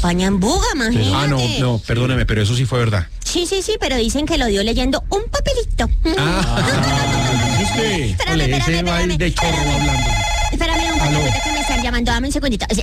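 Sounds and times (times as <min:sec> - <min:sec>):
speech: 0:00.0 - 0:07.1, 0:07.7 - 0:10.2, 0:11.0 - 0:12.8
laughter: 0:01.0 - 0:01.5, 0:06.1 - 0:08.6
telephone ringing with a melodic tonal ringtone: 0:06.6 - 0:08.6, 0:09.4 - 0:12.0.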